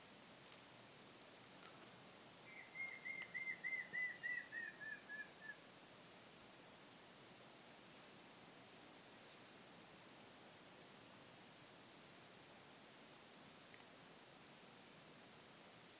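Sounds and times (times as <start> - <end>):
soft background noise: 0.0 - 15.9
Montezuma quail Cyrtonyx montezumae whistling: 2.5 - 5.6.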